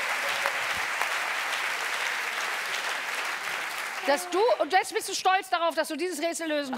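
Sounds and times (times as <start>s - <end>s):
dense crowd applause: 0.0s - 5.2s
speech: 4.1s - 6.7s.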